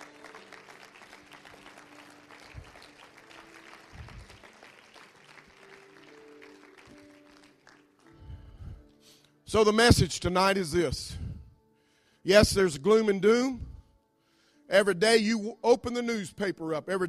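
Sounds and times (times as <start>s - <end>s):
audience applause: 0.0s - 8.0s
speech: 9.5s - 11.2s, 12.2s - 13.7s, 14.7s - 17.0s.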